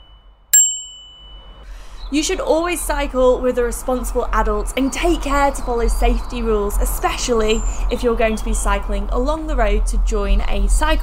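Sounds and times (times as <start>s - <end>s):
bright metallic bicycle bell ding: 0.0s - 1.7s
speech: 2.1s - 11.0s.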